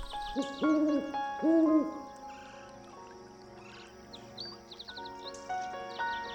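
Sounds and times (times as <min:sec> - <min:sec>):
owl hooting: 0:00.0 - 0:02.7
insects chirping at night: 0:00.0 - 0:06.3.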